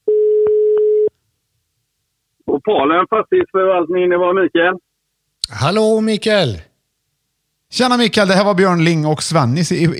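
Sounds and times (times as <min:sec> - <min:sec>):
telephone ringback tone of an outgoing call: 0:00.1 - 0:01.1
speech: 0:02.6 - 0:04.9, 0:05.5 - 0:06.7, 0:07.7 - 0:09.9.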